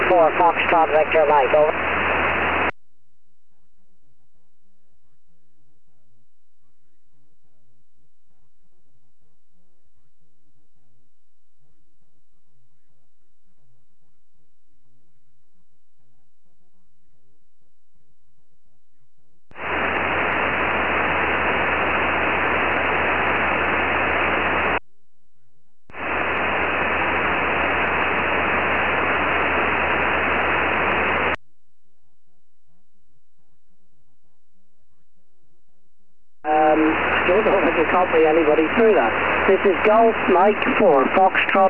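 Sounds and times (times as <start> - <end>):
amateur radio static hissing: 0.0 - 2.7, 19.5 - 24.8, 25.9 - 31.4, 36.5 - 41.6
speech: 0.1 - 1.9, 38.2 - 39.0, 39.6 - 41.6.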